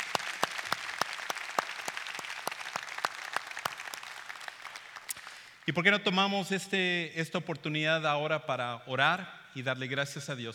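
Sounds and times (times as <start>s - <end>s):
audience applauding graduating young people: 0.0s - 5.6s
speech: 5.6s - 10.5s.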